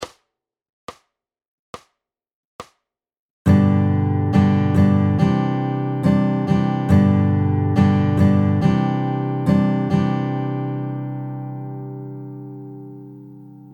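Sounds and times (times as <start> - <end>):
guitar ballad strumming in varying patterns: 3.5 - 13.7.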